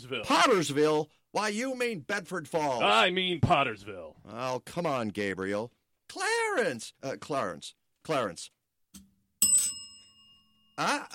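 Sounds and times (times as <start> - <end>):
speech: 0.0 - 8.6, 10.8 - 11.1
small bell ringing: 9.4 - 11.1.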